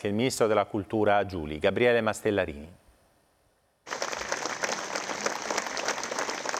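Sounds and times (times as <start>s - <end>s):
speech: 0.0s - 2.8s
large funeral crowd applauding: 3.9s - 6.5s.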